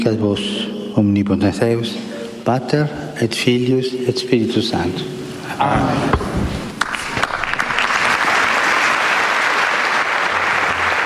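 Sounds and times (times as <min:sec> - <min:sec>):
speech: 0:00.0 - 0:06.6
audience applause at a papal general audience: 0:06.8 - 0:11.0.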